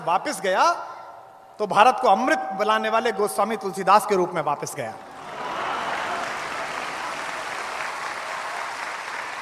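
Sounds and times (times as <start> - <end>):
speech: 0.0 - 0.9, 1.6 - 5.1
audience applause: 5.1 - 9.4.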